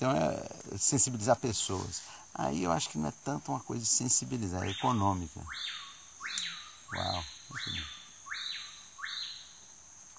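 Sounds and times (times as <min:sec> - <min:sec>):
speech: 0:00.0 - 0:08.0
constant high insect-like hiss: 0:00.0 - 0:10.1
balateiro bird singing rising whistled phrases: 0:04.6 - 0:09.4.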